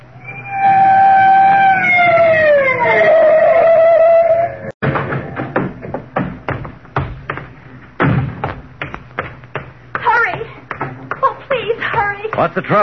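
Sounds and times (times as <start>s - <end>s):
police car siren wailing: 0.1s - 4.7s
thudding footsteps or knocks: 4.8s - 12.8s
speech: 12.5s - 12.8s.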